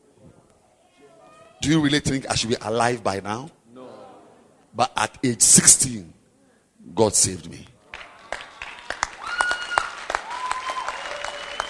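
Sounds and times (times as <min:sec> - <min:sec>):
speech: 0:01.6 - 0:03.6, 0:04.8 - 0:06.2, 0:07.0 - 0:07.7
audience clapping: 0:07.9 - 0:11.6.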